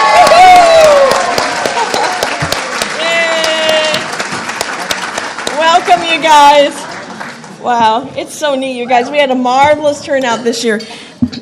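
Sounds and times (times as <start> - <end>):
audience cheers and whistles: 0.0 - 2.2
audience applause for OTC students: 0.0 - 7.7
speech: 6.3 - 6.8, 7.6 - 11.0.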